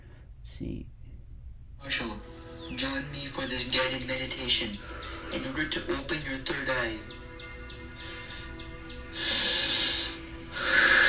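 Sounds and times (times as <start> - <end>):
deep breaths during a guided meditation: 0.0 - 0.4, 4.7 - 5.6, 7.9 - 11.0
speech: 0.4 - 1.0, 1.8 - 7.2, 9.2 - 9.4.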